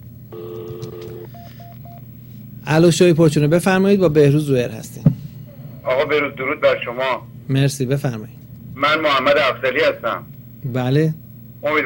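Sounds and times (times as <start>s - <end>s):
speech: 0.3s - 1.0s, 2.7s - 5.2s, 5.8s - 11.8s
two-pitch telephone dialing tone calling a cellphone: 0.3s - 2.0s.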